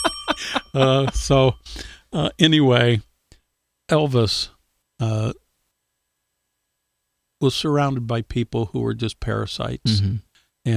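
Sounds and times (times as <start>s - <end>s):
bell ringing with a thin tone: 0.0s - 1.6s
speech: 0.5s - 3.1s, 3.9s - 5.4s, 7.4s - 10.7s
drawn-out vocal sounds from a nearby voice: 9.9s - 10.2s.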